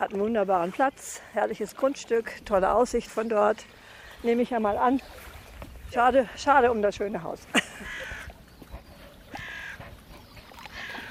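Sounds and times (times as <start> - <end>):
faint rustling outdoor background: 0.0 - 11.0
speech: 0.1 - 5.3, 5.9 - 8.1
crows cawing harshly in trees: 7.8 - 8.3, 9.3 - 9.8.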